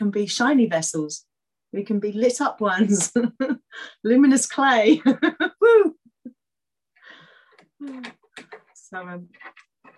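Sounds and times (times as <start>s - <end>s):
speech: 0.1s - 6.0s, 8.9s - 9.9s
cat scratching at door: 8.2s - 9.9s.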